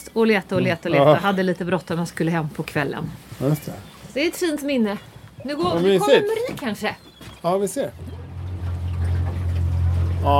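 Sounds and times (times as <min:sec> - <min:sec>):
faint water noise: 0:00.0 - 0:10.3
speech: 0:00.2 - 0:08.1
motorboat engine droning: 0:07.7 - 0:10.3.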